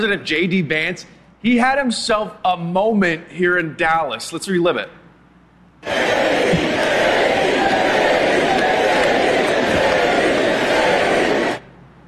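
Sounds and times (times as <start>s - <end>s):
speech: 0.0s - 5.0s
large crowd chanting a name in unison at a rally: 5.8s - 11.7s.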